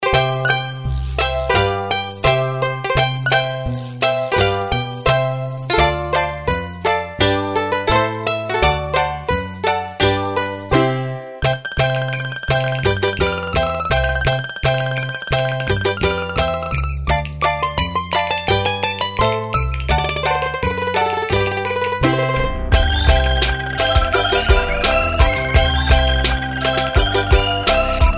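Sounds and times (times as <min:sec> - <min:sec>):
balalaika: 0:00.0 - 0:28.1.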